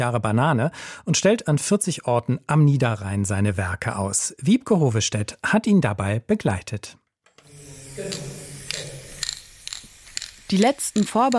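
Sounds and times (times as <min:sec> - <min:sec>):
speech: 0:00.0 - 0:07.0, 0:08.0 - 0:08.4, 0:10.5 - 0:11.3
spray paint can hissing: 0:07.4 - 0:11.3
clicking rattle: 0:08.1 - 0:11.3.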